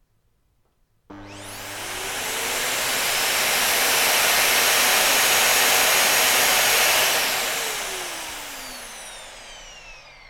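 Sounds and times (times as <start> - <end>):
vacuum cleaner running: 1.1 - 10.2.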